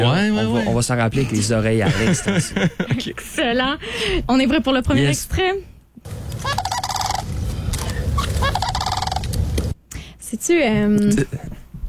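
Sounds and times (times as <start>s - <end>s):
speech: 0.0s - 5.7s, 10.3s - 11.5s
low steady outdoor rumble: 0.0s - 11.8s
laughter: 1.8s - 3.2s
crane calls: 6.1s - 9.5s.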